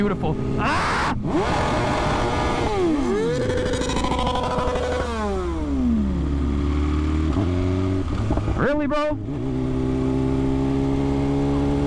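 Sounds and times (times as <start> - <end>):
speech: 0.0 - 2.0, 8.6 - 9.5
motorcycle engine revving: 0.0 - 11.8
man exclaiming: 0.6 - 1.2.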